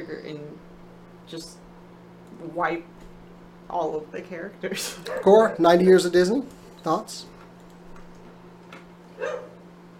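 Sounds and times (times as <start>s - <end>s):
steady low electrical hum: 0.0s - 9.9s
speech: 1.3s - 1.6s, 2.3s - 3.1s, 3.7s - 7.3s
dog bark: 5.1s - 5.5s, 9.2s - 9.6s.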